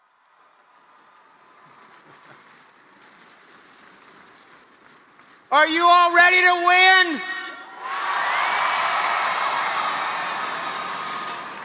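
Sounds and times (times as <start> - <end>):
speech: 5.5 - 7.4
scattered whoops: 7.6 - 11.6
large audience cheering and applause: 7.7 - 11.6.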